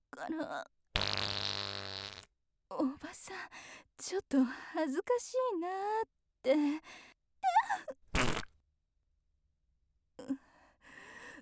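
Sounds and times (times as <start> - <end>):
speech: 0.1 - 1.3, 2.7 - 8.3
raspy fart from someone constipated: 1.0 - 2.3, 8.1 - 8.5.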